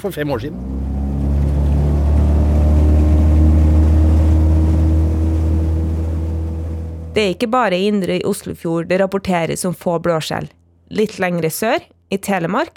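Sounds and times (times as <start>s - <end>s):
speech: 0.0s - 0.9s, 7.2s - 12.7s
motorboat engine running: 0.0s - 8.5s.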